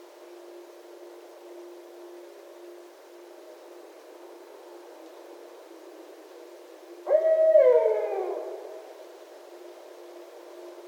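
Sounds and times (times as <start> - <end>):
barred owl hoot: 7.0 - 8.9.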